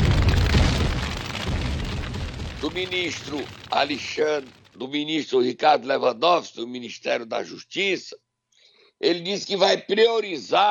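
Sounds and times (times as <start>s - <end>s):
MOAB bomb explosion sound effect: 0.0s - 4.8s
speech: 2.6s - 8.2s, 9.0s - 10.6s.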